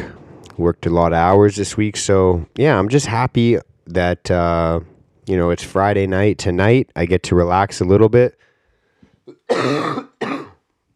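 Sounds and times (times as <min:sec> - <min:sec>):
speech: 0:00.6 - 0:08.5, 0:09.5 - 0:10.1
person clearing throat with raspy bursts: 0:09.3 - 0:10.6.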